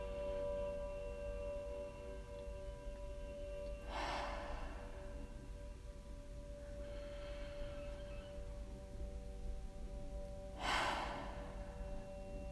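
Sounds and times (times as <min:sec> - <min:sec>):
steady low hum: 0:00.0 - 0:12.4
deep belly inhales and audible exhales in a guided breathing exercise: 0:03.8 - 0:05.7, 0:06.6 - 0:08.7, 0:10.6 - 0:12.4.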